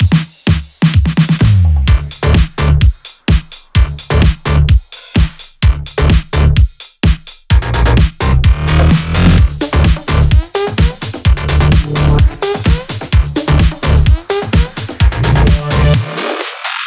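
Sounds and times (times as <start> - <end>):
Latin dance mix in E at 128 BPM: 0.0 - 16.8.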